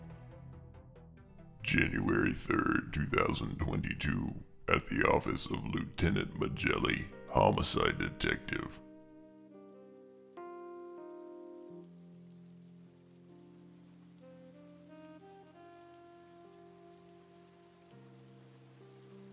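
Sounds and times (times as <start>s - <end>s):
speech: 1.6s - 8.9s
rain falling: 1.7s - 8.8s, 11.5s - 19.3s.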